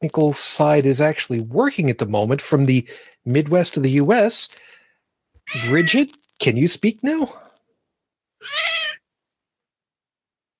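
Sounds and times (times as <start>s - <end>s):
speech: 0.0s - 4.8s, 5.5s - 7.5s
cat meowing: 5.4s - 6.0s, 8.4s - 9.0s.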